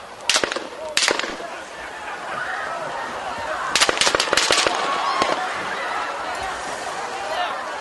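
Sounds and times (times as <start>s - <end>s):
gunshots playing from a video: 0.3s - 1.5s, 3.8s - 5.5s
laughter: 1.2s - 7.7s.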